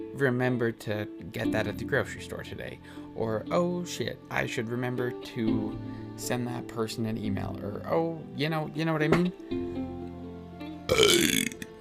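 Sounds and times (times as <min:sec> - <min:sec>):
speech: 0:00.2 - 0:10.0, 0:11.0 - 0:11.6
loud burp: 0:10.9 - 0:11.7.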